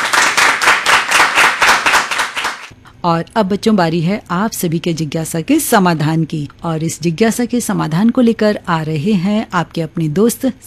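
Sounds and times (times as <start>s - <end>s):
children clapping in rhythm: 0.0s - 2.7s
speech: 3.0s - 10.6s.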